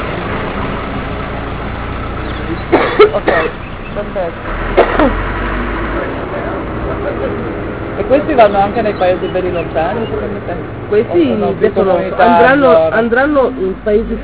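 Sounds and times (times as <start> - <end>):
truck engine idling: 0.0 - 14.2
person coughing and clearing their throat: 2.7 - 3.6, 4.8 - 5.2
speech: 3.1 - 5.3, 7.0 - 14.2.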